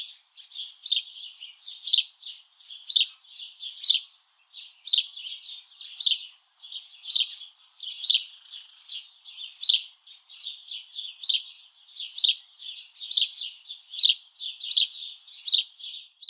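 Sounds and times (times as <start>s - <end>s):
house sparrow bright chirps: 0.0s - 16.2s.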